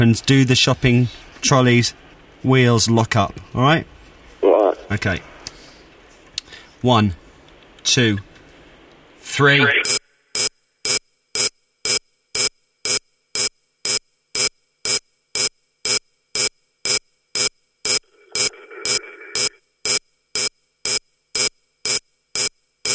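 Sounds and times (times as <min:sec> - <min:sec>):
speech: 0:00.0 - 0:03.9, 0:04.9 - 0:05.3, 0:06.8 - 0:07.2, 0:07.8 - 0:08.3, 0:09.3 - 0:10.0
loud electronic pulses from a radio turned up to full volume: 0:09.6 - 0:12.0, 0:17.9 - 0:22.9.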